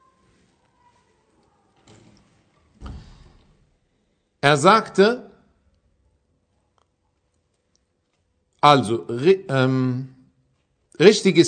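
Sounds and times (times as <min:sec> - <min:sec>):
door closing with a solid thump: 0:02.8 - 0:03.7
speech: 0:04.4 - 0:05.3, 0:08.6 - 0:10.2, 0:11.0 - 0:11.4.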